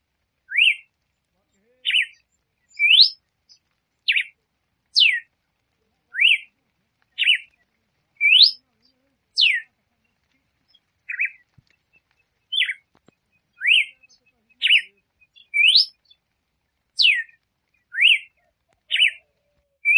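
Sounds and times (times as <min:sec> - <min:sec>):
female red-cowled cardinal singing to stimulate the male: 0:00.5 - 0:00.9, 0:01.9 - 0:05.3, 0:06.1 - 0:06.5, 0:08.2 - 0:08.6, 0:09.4 - 0:16.2, 0:16.9 - 0:19.9.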